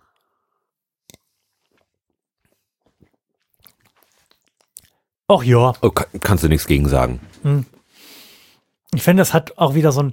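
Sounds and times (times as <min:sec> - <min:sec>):
person sipping a punch-like drink: 0:01.0 - 0:05.1
speech: 0:05.3 - 0:07.8, 0:08.9 - 0:10.1.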